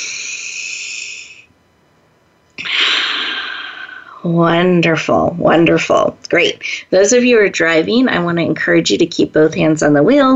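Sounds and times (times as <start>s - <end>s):
deep breaths in a guided breathing exercise: 0.0s - 1.5s, 2.6s - 4.2s
speech: 4.2s - 10.3s.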